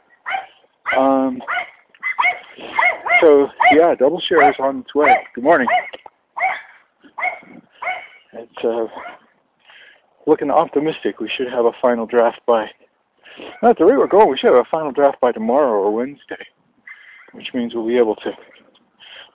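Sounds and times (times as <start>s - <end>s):
dog barking: 0.2s - 8.2s, 9.0s - 9.3s
speech: 1.0s - 1.6s, 3.2s - 6.0s, 8.6s - 9.1s, 10.3s - 12.8s, 13.6s - 16.6s, 17.3s - 18.5s.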